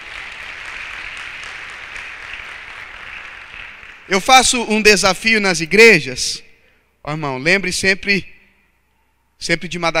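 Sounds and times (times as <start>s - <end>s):
audience clapping in an indoor space: 0.0s - 4.3s
speech: 4.1s - 6.4s, 7.0s - 8.3s, 9.4s - 9.9s.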